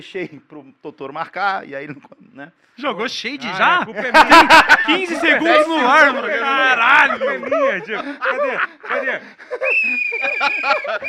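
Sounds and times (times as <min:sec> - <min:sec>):
speech: 0:00.0 - 0:11.0
people laughing: 0:04.0 - 0:11.0
whistle blast: 0:09.6 - 0:11.0.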